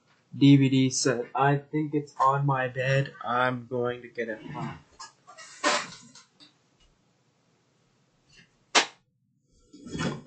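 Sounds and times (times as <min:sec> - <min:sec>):
speech: 0:00.4 - 0:04.9
hand slapping an Xbox 360 console: 0:08.7 - 0:09.0.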